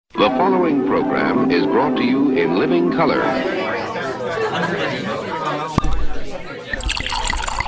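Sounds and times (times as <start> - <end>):
speech: 0.2 - 5.8
murmur of chatter from many people: 0.2 - 7.6
laughter: 3.2 - 5.8
wine pouring into a glass: 6.7 - 7.6.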